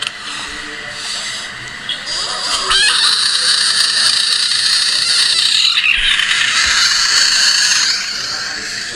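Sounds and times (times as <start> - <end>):
frog or toad screaming: 2.1 - 8.8.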